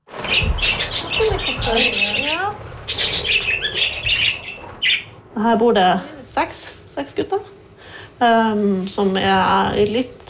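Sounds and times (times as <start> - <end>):
six male budgerigars chattering and squawking at an animal-welfare shelter: 0.2 - 5.2
speech: 1.7 - 2.7, 5.4 - 7.5, 8.2 - 10.2.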